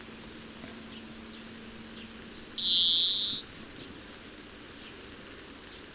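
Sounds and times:
low background hiss: 0.0 - 5.9
European greenfinch Chloris chloris giving a nasal buzzing wheeze: 2.6 - 3.4.

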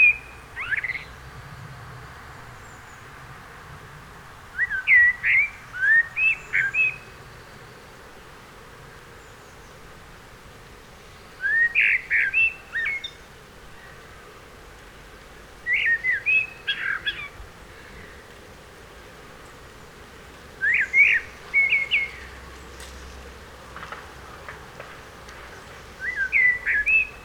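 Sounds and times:
Turdus merula common blackbird singing mellow whistled notes: 0.0 - 1.1, 4.6 - 7.1, 11.4 - 13.2, 15.7 - 17.3, 20.6 - 22.2, 26.0 - 27.2.

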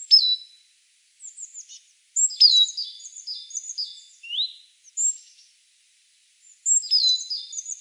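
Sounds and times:
great tit Parus major calls: 0.0 - 0.6, 1.2 - 5.5, 6.4 - 7.7.

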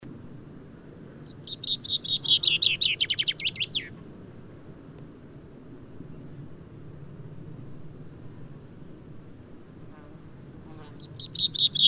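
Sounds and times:
common chaffinch Fringilla coelebs singing: 1.2 - 4.0, 10.9 - 11.8.

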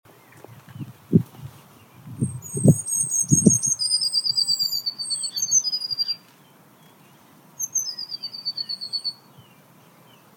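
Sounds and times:
Eurasian blue tit Cyanistes caeruleus calling with high trilled notes: 2.2 - 6.2, 7.6 - 9.6.

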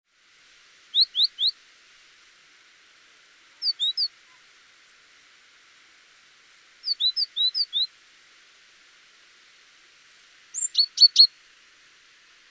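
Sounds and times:
faint hiss: 0.1 - 12.4
great tit Parus major calling: 0.9 - 1.6, 3.6 - 4.4, 6.8 - 7.9, 10.0 - 11.4.

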